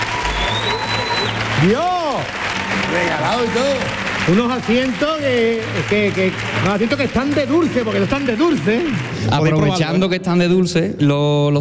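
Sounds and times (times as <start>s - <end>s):
applause: 0.0s - 10.5s
speech: 1.6s - 11.5s.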